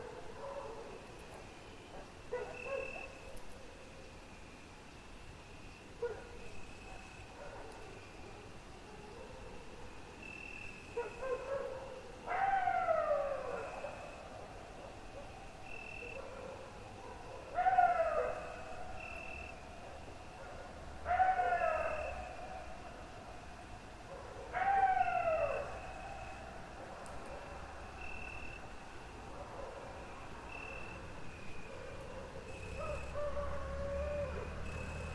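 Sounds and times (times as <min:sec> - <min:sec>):
wolves and dogs howling in chorus: 0:11.0 - 0:14.1, 0:16.0 - 0:18.7, 0:21.0 - 0:22.6, 0:24.2 - 0:25.9, 0:32.1 - 0:35.1.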